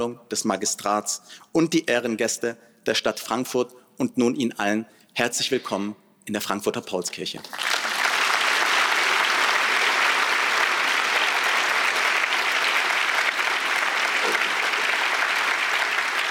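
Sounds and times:
speech: 0.0 - 7.8
large audience applause in a big hall: 7.5 - 16.2.

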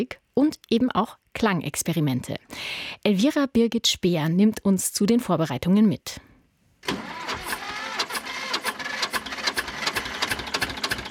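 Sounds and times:
speech: 0.0 - 7.3
old 1965 tractor engine chugging: 7.0 - 11.0.

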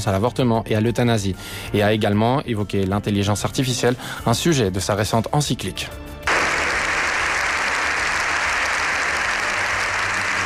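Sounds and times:
speech: 0.0 - 6.2
large crowd applauding in a standing ovation in parliament: 6.3 - 10.4.

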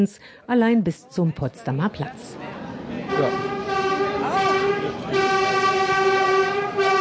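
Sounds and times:
speech: 0.0 - 3.6
S-Bahn commuter train rumbling on rails in Berlin: 2.3 - 7.0.

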